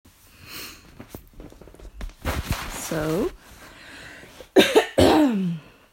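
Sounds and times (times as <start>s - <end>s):
speech: 2.9s - 3.4s
person coughing: 4.5s - 5.7s.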